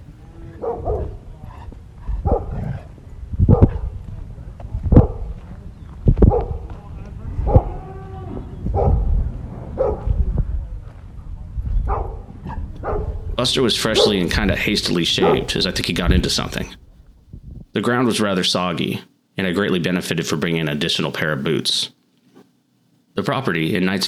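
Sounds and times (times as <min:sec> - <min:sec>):
two dogs barking: 0:00.6 - 0:01.3, 0:02.1 - 0:02.8, 0:03.5 - 0:04.0, 0:04.9 - 0:05.3, 0:06.2 - 0:06.7, 0:07.4 - 0:07.8, 0:08.6 - 0:10.2, 0:11.8 - 0:13.2, 0:13.8 - 0:15.8
speech: 0:13.4 - 0:16.8, 0:17.8 - 0:22.0, 0:23.2 - 0:24.0.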